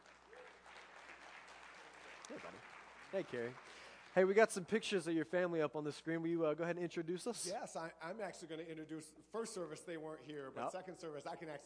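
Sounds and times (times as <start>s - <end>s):
crowd applauding: 0.0s - 4.8s
speech: 2.3s - 11.6s.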